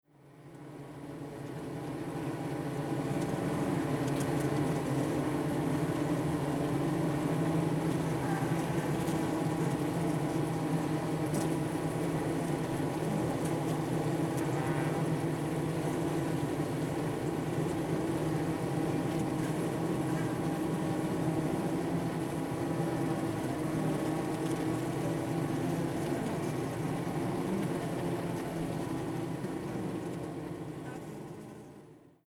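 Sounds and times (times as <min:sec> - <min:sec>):
bees inside a hive: 0:00.2 - 0:32.2.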